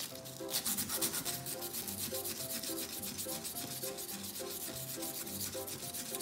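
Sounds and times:
sandpaper polishing a shoemaking needle pressed into a table: 0.0 - 6.1.

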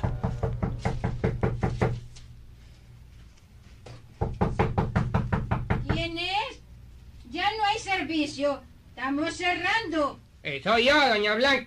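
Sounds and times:
rapid knocking on a wooden house door: 0.0 - 2.0, 4.2 - 6.1
speech: 8.2 - 11.6.

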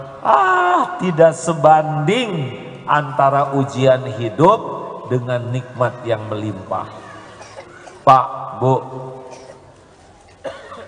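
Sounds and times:
speech: 0.0 - 7.1, 8.0 - 9.2
person coughing: 7.4 - 8.1, 9.2 - 9.7, 10.4 - 10.8.

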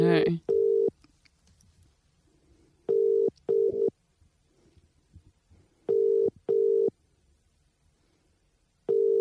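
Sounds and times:
telephone ringing tone on the line: 0.5 - 0.9, 2.9 - 3.9, 5.9 - 6.9, 8.9 - 9.2.

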